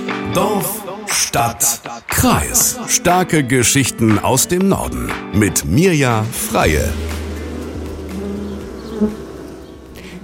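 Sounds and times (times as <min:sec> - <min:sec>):
speech: 0:00.4 - 0:07.2, 0:09.0 - 0:09.2
many bees swarming and buzzing: 0:06.3 - 0:10.2.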